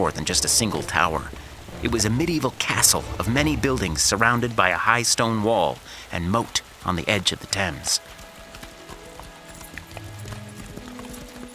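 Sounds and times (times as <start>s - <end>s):
speech: 0.0s - 8.2s
several horses galloping past: 0.0s - 11.5s.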